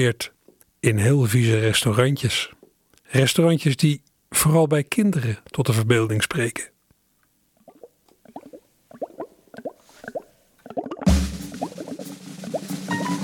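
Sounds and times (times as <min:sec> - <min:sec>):
speech: 0:00.0 - 0:06.7
wet plops from stirring a pot of mud soup with sand: 0:07.6 - 0:12.6.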